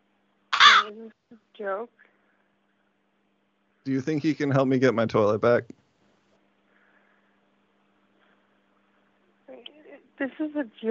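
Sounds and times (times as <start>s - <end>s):
crow cawing indoors after coming in through a broken window: 0.6s - 0.9s
speech: 0.8s - 2.1s, 3.9s - 5.8s, 9.5s - 10.9s.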